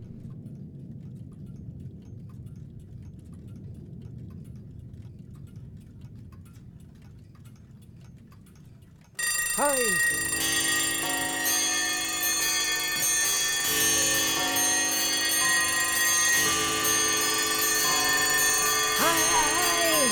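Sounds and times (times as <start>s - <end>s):
several clocks ticking: 9.2s - 20.1s
speech: 9.6s - 10.6s.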